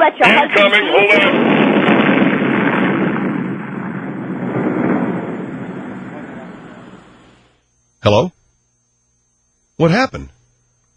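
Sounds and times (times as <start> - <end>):
speech: 0.0 - 1.9, 8.0 - 8.4, 9.8 - 10.4
fireworks explosive roar: 0.0 - 7.6.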